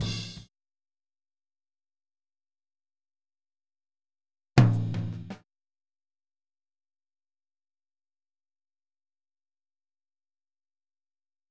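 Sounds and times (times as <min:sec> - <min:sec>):
rack tom drumming in a boogaloo outro: 0:00.0 - 0:00.4, 0:04.6 - 0:05.4.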